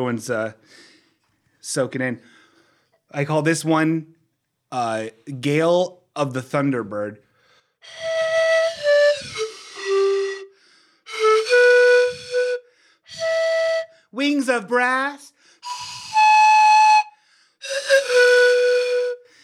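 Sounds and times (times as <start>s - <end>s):
speech: 0.0s - 0.9s, 1.6s - 2.4s, 3.1s - 7.2s, 7.8s - 8.1s, 14.2s - 15.3s
breathy flute playing a halting tune: 7.8s - 14.1s, 15.6s - 19.4s.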